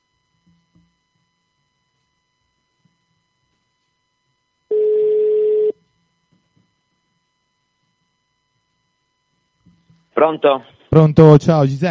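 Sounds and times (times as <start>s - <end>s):
telephone ringing tone of an outgoing call: 4.7s - 5.8s
speech: 10.2s - 11.8s.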